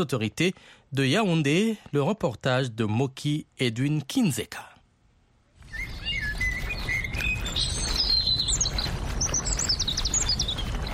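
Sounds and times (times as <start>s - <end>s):
speech: 0.0s - 4.7s
birds singing at sunset: 5.6s - 10.9s.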